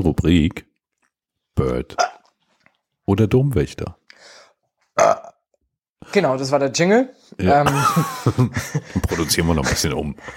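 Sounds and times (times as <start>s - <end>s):
speech: 0.0s - 0.7s, 1.6s - 2.1s, 3.1s - 4.0s, 5.0s - 5.3s, 6.0s - 10.3s
loud burp: 5.0s - 5.4s
laughter: 7.6s - 10.3s.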